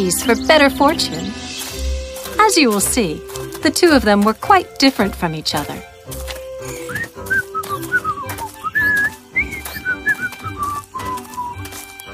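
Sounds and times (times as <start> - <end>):
speech: 0.0 - 1.5, 2.4 - 6.2
person whistling a cheerful tune: 6.6 - 11.7.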